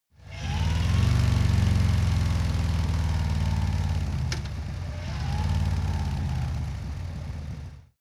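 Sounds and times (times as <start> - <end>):
Harley motorcycle decelerating: 0.2 - 7.9.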